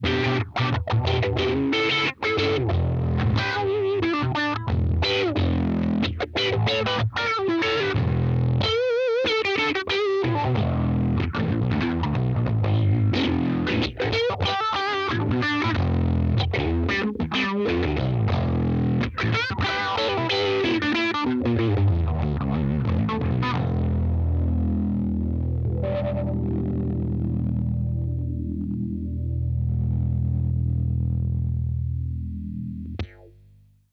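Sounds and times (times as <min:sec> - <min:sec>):
guitars through a phasing filter: 0:00.0 - 0:33.2.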